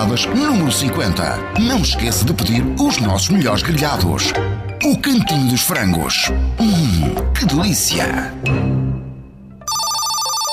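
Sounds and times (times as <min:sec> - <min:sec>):
speech: 0:00.0 - 0:08.8
telephone ringing with a bright electronic ring: 0:09.6 - 0:10.5.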